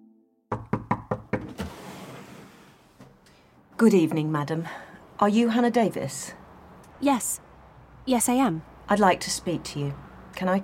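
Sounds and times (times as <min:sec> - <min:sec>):
firm knocking on a wooden door: 0:00.5 - 0:01.6
speech: 0:03.8 - 0:06.4, 0:07.0 - 0:07.4, 0:08.0 - 0:10.6.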